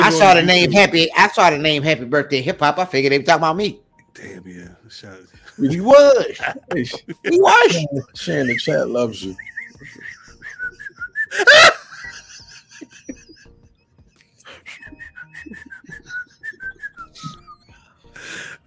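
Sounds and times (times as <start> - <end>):
speech: 0.1 - 10.0, 11.3 - 11.7
laughter: 5.5 - 13.6, 14.5 - 17.4
person whistling a lively melody: 8.3 - 11.5, 14.5 - 18.4.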